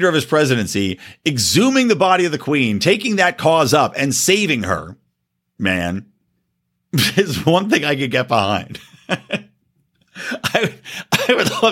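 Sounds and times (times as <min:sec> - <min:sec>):
speech: 0:00.0 - 0:05.0, 0:05.6 - 0:06.1, 0:06.9 - 0:09.4, 0:10.2 - 0:11.7
person coughing: 0:10.2 - 0:11.7.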